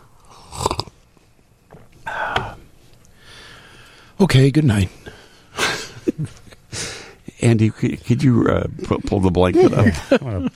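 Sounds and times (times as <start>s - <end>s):
person sipping milk: 0.3s - 0.9s
quiet breathing: 1.3s - 4.2s, 4.9s - 5.9s, 6.7s - 7.3s
speech: 4.2s - 5.1s, 7.4s - 10.5s
laughter: 8.9s - 10.5s.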